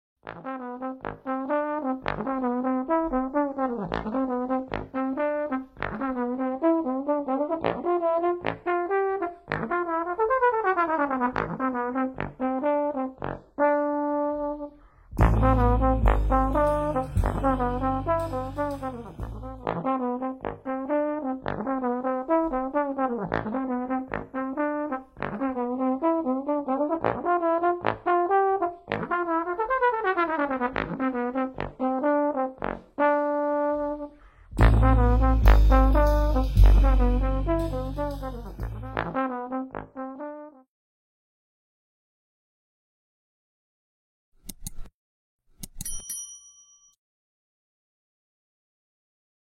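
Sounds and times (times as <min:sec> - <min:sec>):
trombone: 0:00.2 - 0:40.6.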